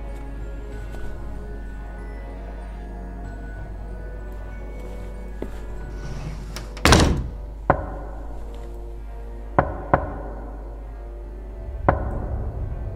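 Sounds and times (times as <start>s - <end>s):
low hum: 0.0s - 12.9s
knocking on a door from outside: 9.6s - 10.2s.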